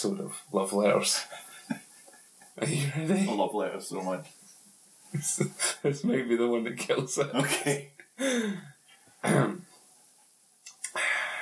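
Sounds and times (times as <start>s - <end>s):
speech: 0.0s - 1.8s, 2.6s - 4.4s, 5.1s - 9.6s
laughter: 0.0s - 4.2s, 5.2s - 8.6s
person clearing throat: 7.4s - 8.6s, 9.2s - 9.6s.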